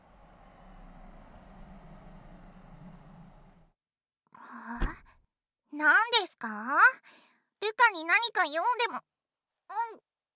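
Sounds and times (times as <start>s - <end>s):
car engine rumbling: 0.0s - 3.8s
speech: 5.8s - 7.2s, 7.8s - 9.1s.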